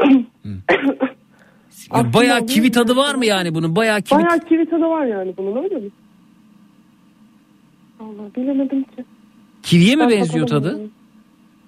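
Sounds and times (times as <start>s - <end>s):
person coughing throatily: 0.0s - 1.2s
speech: 1.9s - 6.0s, 8.0s - 11.0s.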